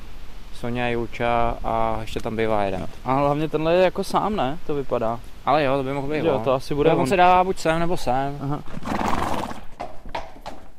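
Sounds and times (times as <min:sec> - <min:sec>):
steady noise: 0:00.0 - 0:10.7
speech: 0:00.6 - 0:09.0
hooves of a horse being led before saddling: 0:07.1 - 0:10.7.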